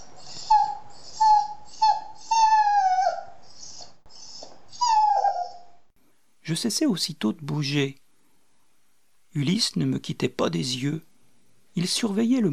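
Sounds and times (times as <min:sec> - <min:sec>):
dog whimpering: 0:00.0 - 0:05.9
speech: 0:06.5 - 0:08.0, 0:09.4 - 0:11.1, 0:11.8 - 0:12.5.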